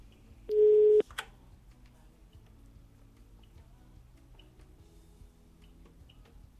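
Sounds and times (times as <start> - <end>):
telephone line busy tone beep: 0.5 - 1.0.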